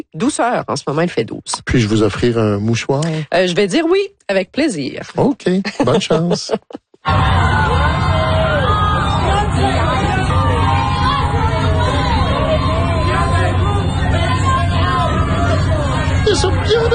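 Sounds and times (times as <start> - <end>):
speech: 0.1 - 8.1
laughter: 5.6 - 7.3
low rumble of traffic: 7.1 - 16.9
photographers shouting on a red carpet: 7.1 - 16.9.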